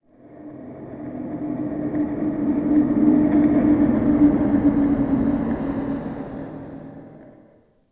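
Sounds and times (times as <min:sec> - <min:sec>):
city flyby ambience: 0:00.1 - 0:07.8.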